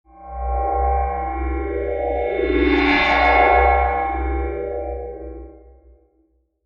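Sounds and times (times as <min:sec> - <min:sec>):
mysterious metal transition effect: 0:01.4 - 0:05.7.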